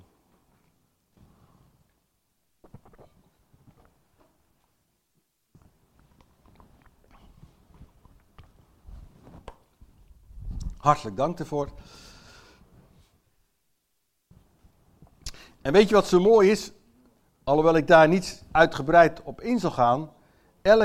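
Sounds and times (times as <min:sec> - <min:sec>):
slurping and swallowing a drink: 0:02.6 - 0:03.9, 0:06.0 - 0:08.6
speech: 0:10.8 - 0:12.1, 0:15.6 - 0:16.8, 0:17.5 - 0:20.8.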